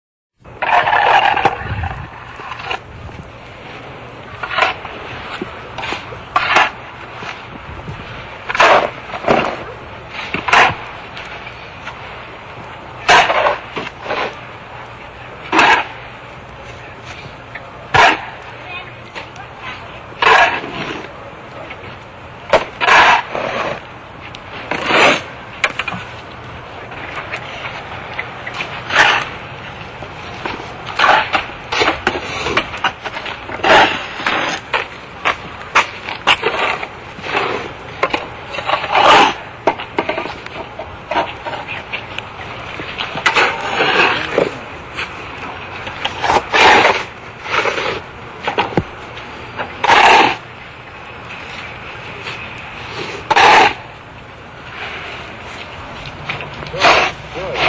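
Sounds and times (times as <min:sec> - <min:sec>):
shovel working: 0:00.6 - 0:03.2, 0:04.4 - 0:12.0, 0:13.0 - 0:14.4, 0:15.5 - 0:16.0, 0:17.9 - 0:18.4, 0:19.1 - 0:21.1, 0:22.5 - 0:23.8, 0:24.5 - 0:26.1, 0:26.9 - 0:29.6, 0:30.3 - 0:48.9, 0:49.5 - 0:50.4, 0:51.6 - 0:53.9, 0:54.7 - 0:57.6.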